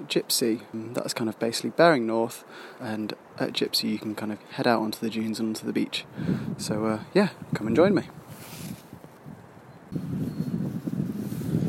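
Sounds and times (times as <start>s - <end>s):
gusty wind buffeting the microphone outdoors: 0.0s - 11.6s
speech: 0.1s - 8.5s
faint rustling: 8.1s - 11.6s.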